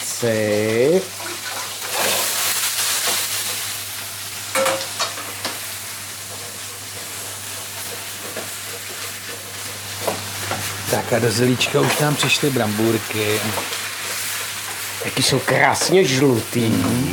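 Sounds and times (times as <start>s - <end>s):
cabbage sizzling while frying in a pan: 0.0s - 17.1s
speech: 0.2s - 1.2s, 11.1s - 13.8s, 15.0s - 17.1s
scraping and clattering as cabbage is stirred in a pan: 1.2s - 3.8s, 4.5s - 10.8s, 13.2s - 16.0s.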